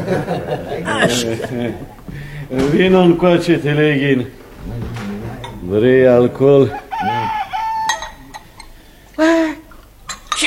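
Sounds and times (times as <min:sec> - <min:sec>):
laughter: 0:00.0 - 0:03.4, 0:04.6 - 0:09.5
speech: 0:00.0 - 0:05.0, 0:05.7 - 0:06.8
rooster crowing: 0:06.6 - 0:08.7.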